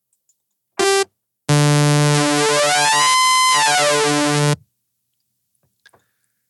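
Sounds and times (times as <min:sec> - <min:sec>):
oscillator sync synthesizer pitch sweep: 0:00.8 - 0:04.6.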